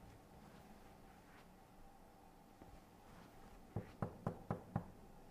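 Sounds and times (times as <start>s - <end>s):
knocking on a door: 3.7s - 4.9s.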